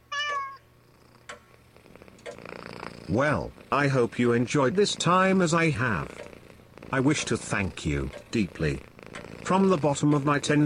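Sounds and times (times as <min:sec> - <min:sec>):
cat meowing: 0:00.1 - 0:00.6
quiet clicks: 0:01.2 - 0:01.5, 0:02.1 - 0:02.5, 0:06.0 - 0:06.4, 0:08.1 - 0:10.6
speech: 0:03.1 - 0:06.2, 0:06.9 - 0:08.9, 0:09.5 - 0:10.6.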